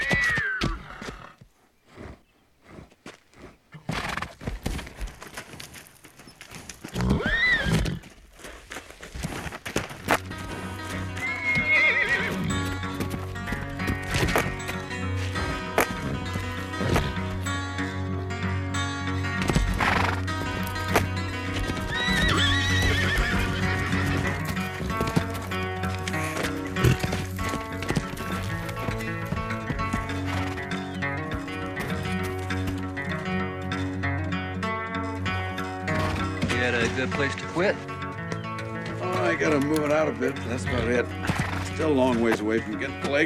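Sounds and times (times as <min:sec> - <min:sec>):
spooked horse neighing in a meadow: 0:00.0 - 0:04.4, 0:06.9 - 0:08.1, 0:10.9 - 0:13.0, 0:15.4 - 0:17.4, 0:19.6 - 0:20.6, 0:21.5 - 0:27.7, 0:40.7 - 0:41.8
horse hooves clip-clopping: 0:00.0 - 0:43.2
speech: 0:37.0 - 0:37.9, 0:39.4 - 0:41.2, 0:41.8 - 0:43.2.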